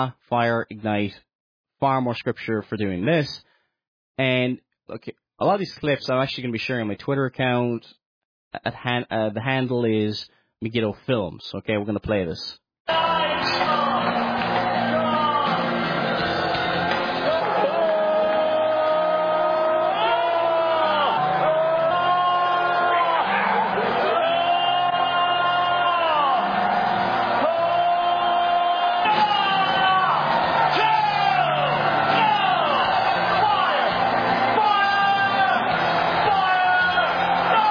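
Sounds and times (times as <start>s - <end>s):
speech: 0.0s - 3.5s, 4.2s - 14.2s
large crowd with hands up screaming, wailing and shouting: 12.9s - 37.6s.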